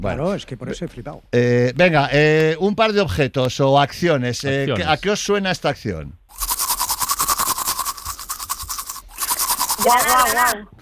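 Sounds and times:
speech: 0.0s - 6.2s, 9.8s - 10.7s
toothbrush scrubbing teeth: 6.3s - 10.6s.

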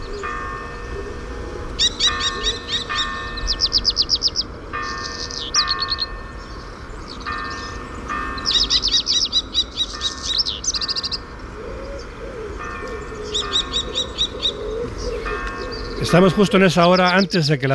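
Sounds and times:
common kestrel calling: 1.8s - 17.7s
speech: 16.2s - 17.7s.

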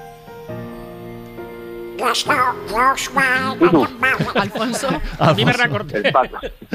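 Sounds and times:
raspy quacking cartoon duck voice singing: 2.0s - 5.0s
laughter: 2.0s - 6.7s
speech: 2.0s - 6.7s.

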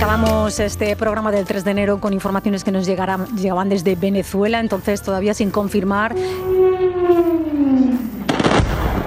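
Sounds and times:
speech: 0.2s - 6.8s
descending whistling tone: 6.0s - 8.3s
loud explosion in Venezuela: 8.2s - 9.0s.

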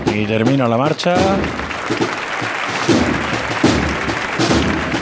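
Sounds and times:
large crowd applauding and cheering outdoors: 0.1s - 5.0s
speech: 0.3s - 2.1s.

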